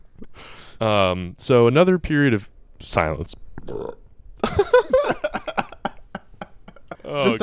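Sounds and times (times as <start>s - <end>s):
speech: 0.8s - 4.0s, 7.1s - 7.4s
long loud belch: 3.7s - 4.0s
laughter: 4.4s - 7.4s.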